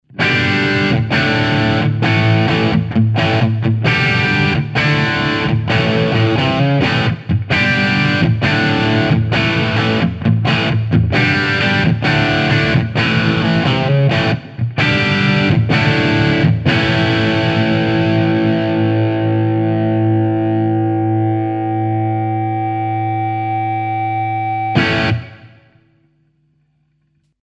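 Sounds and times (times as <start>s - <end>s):
electric guitar with humbucker bridge pickup through tube preamp: 0.0s - 25.8s.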